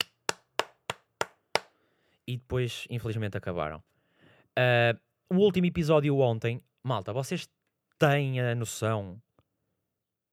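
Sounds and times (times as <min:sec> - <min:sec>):
sharp hand claps: 0:00.0 - 0:01.8
speech: 0:02.3 - 0:03.9, 0:04.6 - 0:09.2.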